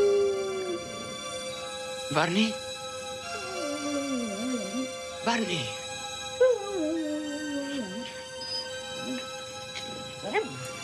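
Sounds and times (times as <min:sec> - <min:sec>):
dog whining, howling and whimpering in heavy snowfall: 0:00.0 - 0:01.7, 0:03.3 - 0:05.0, 0:06.4 - 0:10.6
speech: 0:02.1 - 0:02.6, 0:05.2 - 0:05.8.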